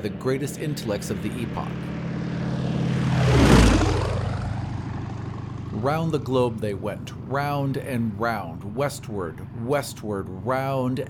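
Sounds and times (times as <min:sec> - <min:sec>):
speech: 0:00.0 - 0:02.0, 0:05.8 - 0:11.0
racing propeller aeroplane roaring past at speed: 0:00.0 - 0:11.0.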